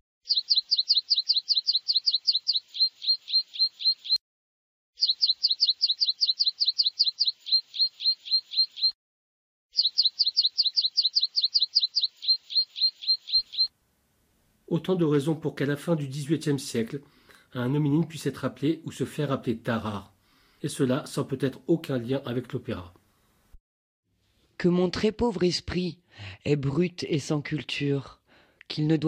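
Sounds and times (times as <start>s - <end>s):
woodlark singing: 0.2s - 4.2s, 5.0s - 9.0s, 9.8s - 13.7s
speech: 14.7s - 23.0s, 24.6s - 29.0s.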